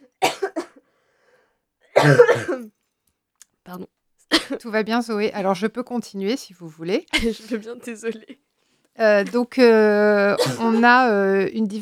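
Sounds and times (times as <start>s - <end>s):
person coughing harshly in a coughing fit: 0.0s - 0.8s, 1.9s - 2.7s, 7.1s - 7.6s, 10.4s - 11.0s
speech: 2.0s - 2.8s, 3.7s - 11.7s.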